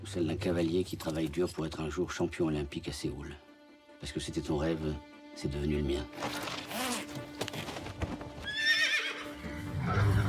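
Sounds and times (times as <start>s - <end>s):
speech: 0.0s - 6.5s
horse hoof clops: 6.4s - 8.8s
horse neighing loudly: 8.4s - 10.2s.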